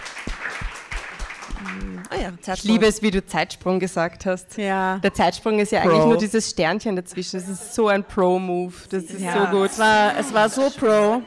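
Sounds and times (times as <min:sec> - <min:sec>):
crowd clapping: 0:00.0 - 0:03.0
speech: 0:01.6 - 0:11.2.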